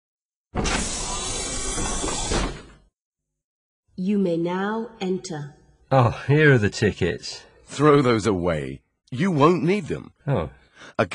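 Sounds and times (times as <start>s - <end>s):
sliding door opening with a mechanical whoosh: 0.6s - 2.9s
speech: 4.0s - 11.1s.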